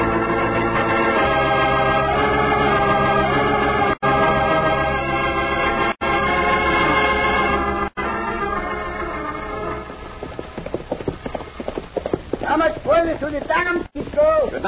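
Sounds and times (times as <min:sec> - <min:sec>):
sustained tonal backing: 0:00.0 - 0:11.7
horses galloping: 0:08.5 - 0:14.6.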